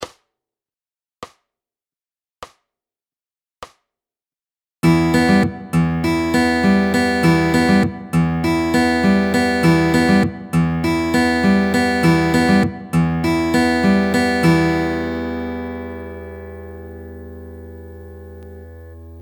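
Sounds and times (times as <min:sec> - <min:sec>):
fingerpicking pattern in E minor: 0:04.8 - 0:19.2.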